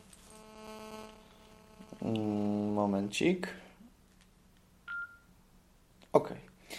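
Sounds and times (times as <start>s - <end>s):
speech: 2.0s - 3.6s
mobile phone keypad beep as the phone is switched off: 4.9s - 5.3s.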